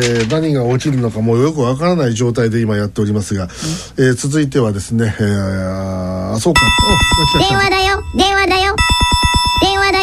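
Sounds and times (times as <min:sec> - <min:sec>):
speech: 0:00.0 - 0:09.0, 0:09.6 - 0:10.0
electronic telephone ringtone playing a melodic jingle: 0:06.6 - 0:10.0.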